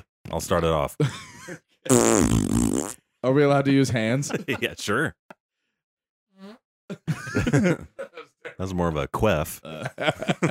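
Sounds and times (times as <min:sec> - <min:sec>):
speech: 0:00.3 - 0:05.2, 0:06.4 - 0:10.4
laughter: 0:01.0 - 0:01.9, 0:03.9 - 0:05.1, 0:06.9 - 0:08.6, 0:09.6 - 0:10.4
person blowing a raspberry imitating a fart: 0:01.9 - 0:03.0.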